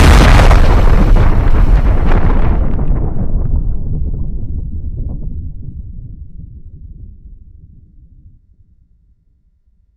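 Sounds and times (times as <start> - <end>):
atomic explosion: 0.0 - 7.0.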